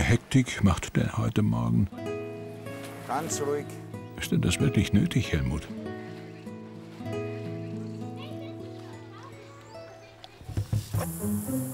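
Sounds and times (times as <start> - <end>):
speech: 0.1 - 2.1, 3.1 - 5.8
hose spraying water on a bull elephant: 10.5 - 11.7.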